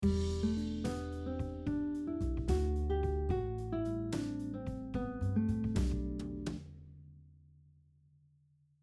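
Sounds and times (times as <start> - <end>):
guitar playing G Major scale over diatonic chords: 0.0 - 6.5.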